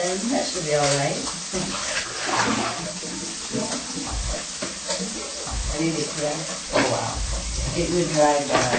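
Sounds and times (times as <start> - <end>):
speech: 0.2 - 2.6, 5.8 - 8.7
salad leaves washed by hand in a basin of water: 1.3 - 8.7.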